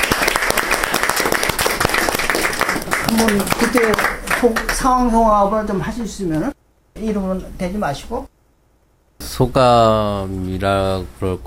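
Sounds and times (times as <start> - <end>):
crowd applauding to encourage a recovered person's family: 0.0 - 5.0
speech: 3.1 - 8.3, 9.4 - 11.4.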